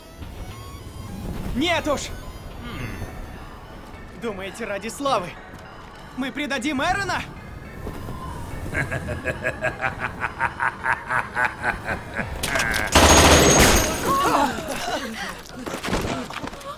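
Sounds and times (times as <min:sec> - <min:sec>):
speech: 0:01.6 - 0:02.2, 0:04.2 - 0:05.4, 0:06.2 - 0:07.3, 0:08.8 - 0:12.3
laughter: 0:08.6 - 0:13.0, 0:13.9 - 0:16.7
automatic rifle fire in a film soundtrack: 0:12.9 - 0:14.0.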